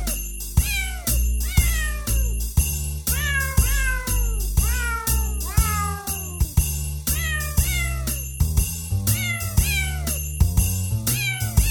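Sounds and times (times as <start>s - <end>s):
sampled cat meows pitched into a bouncy Christmas melody: 0.0s - 2.4s, 3.1s - 6.5s, 7.1s - 8.2s, 9.2s - 10.2s, 11.2s - 11.6s
steady beat and bass: 0.0s - 11.6s
tinkly bell-like sparkle: 0.0s - 11.6s.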